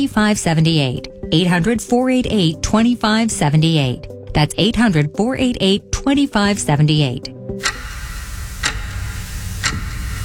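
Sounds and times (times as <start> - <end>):
speech: 0.0 - 7.7
ticking clock sound effect: 7.6 - 10.2.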